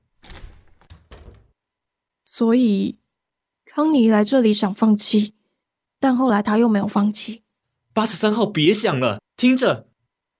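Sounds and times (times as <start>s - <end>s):
door opening: 0.0s - 1.6s
thumping rattling knocks of a door: 0.2s - 1.6s
speech: 2.4s - 3.0s, 3.8s - 5.4s, 6.0s - 7.4s, 8.0s - 9.9s.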